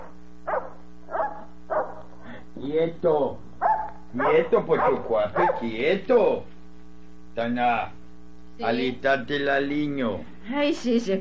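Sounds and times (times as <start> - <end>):
large hunting dog barking: 0.0 - 2.1, 3.6 - 5.8
low steady hum: 0.0 - 11.2
speech: 2.8 - 3.4, 4.1 - 6.6, 7.4 - 8.0, 8.6 - 11.2.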